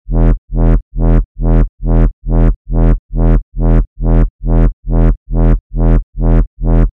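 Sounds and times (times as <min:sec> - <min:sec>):
reversed bass loop in E: 0:00.1 - 0:06.9.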